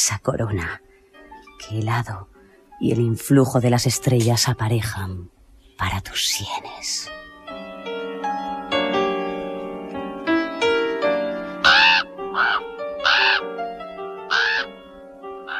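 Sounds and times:
speech: 0.0 - 0.9, 1.6 - 7.3
orchestral music: 7.1 - 15.5
raven cawing: 10.6 - 14.8, 15.4 - 15.5.

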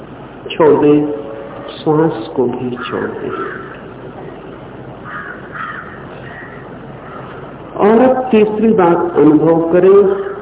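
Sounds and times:
speech: 0.4 - 1.2, 1.8 - 3.7, 8.3 - 10.3
crows cawing: 3.0 - 3.9, 5.0 - 7.6.

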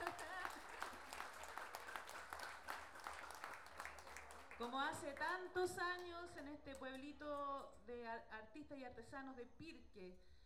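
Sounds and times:
audience applause at a national improvised-verse tournament in a village in Pirque: 0.0 - 5.0
speech: 4.6 - 10.4.

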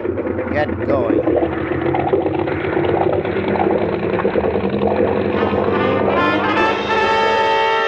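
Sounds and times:
two big boat engines running: 0.0 - 7.7
speech: 0.6 - 2.0, 3.4 - 4.4.

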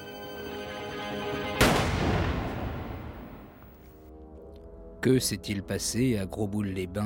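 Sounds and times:
steady tonal background: 0.0 - 7.0
revolver gunshot: 1.6 - 3.7
speech: 5.0 - 7.0.

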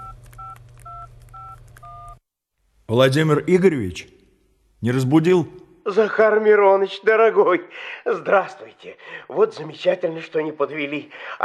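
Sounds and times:
mobile phone number dialed on keypad tones: 0.0 - 2.2
speech: 2.9 - 4.2, 4.8 - 11.4.

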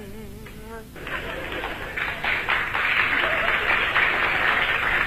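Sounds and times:
audience applause at a performance: 1.0 - 5.0.

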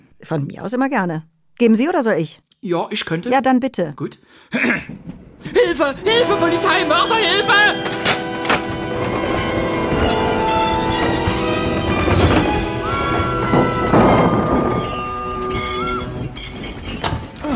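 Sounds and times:
speech: 0.2 - 8.1
desert express train wheels squealing while braking abruptly on open track: 6.1 - 17.5.

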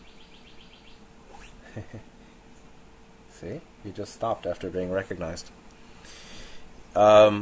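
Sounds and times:
bird singing outside: 0.0 - 1.6
speech: 1.8 - 2.2, 3.4 - 6.2, 6.9 - 7.4.

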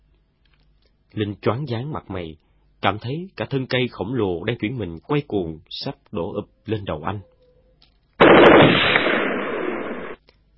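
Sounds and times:
speech: 1.1 - 7.3
automatic gunfire in a wartime firefight: 8.2 - 10.2.

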